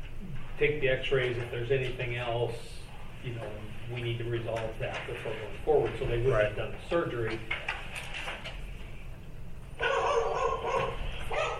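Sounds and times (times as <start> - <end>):
low hum: 0.0 - 11.5
speech: 0.6 - 7.6
dog barking in high-pitched yaps: 9.8 - 11.5.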